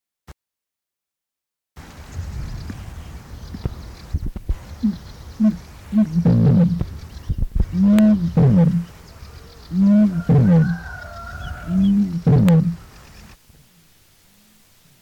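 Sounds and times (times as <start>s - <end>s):
bittern: 4.8s - 6.9s, 7.7s - 8.9s, 9.7s - 10.8s, 11.7s - 12.8s.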